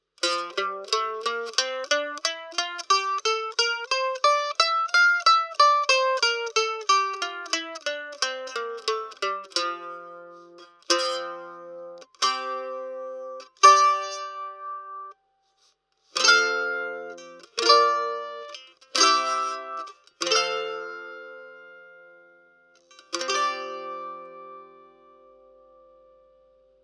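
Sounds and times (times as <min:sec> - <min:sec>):
mandolin through raw piezo pickup: 0:00.0 - 0:26.8.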